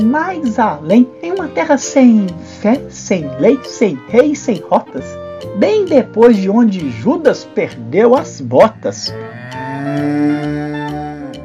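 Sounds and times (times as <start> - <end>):
speech: 0.0 - 10.8
cow mooing: 8.8 - 11.4.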